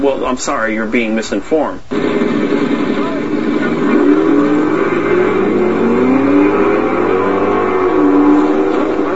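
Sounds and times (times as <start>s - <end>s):
speech: 0.0s - 2.5s
broad rumble: 1.9s - 9.1s
electric car accelerating at a drag racing track: 3.7s - 9.1s.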